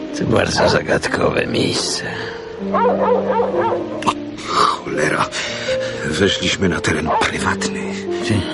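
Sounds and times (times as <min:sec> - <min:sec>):
speech: 0:00.2 - 0:04.2, 0:04.9 - 0:08.5
large dog growling and barking: 0:02.7 - 0:04.0.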